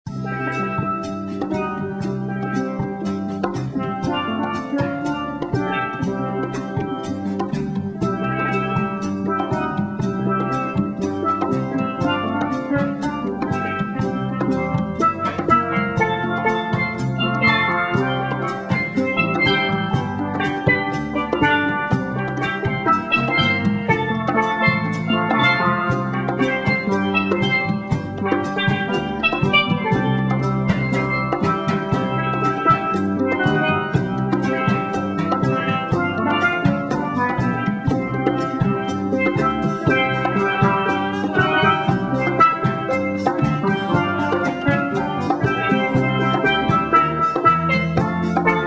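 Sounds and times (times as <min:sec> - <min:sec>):
steel drum band: 0:00.0 - 0:48.6.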